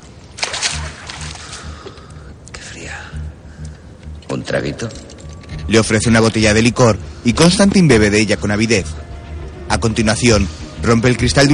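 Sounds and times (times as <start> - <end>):
water thrown onto a floor splashing over bare feet: 0.0 - 1.6
speech: 4.4 - 5.1, 5.7 - 9.1, 9.7 - 11.5.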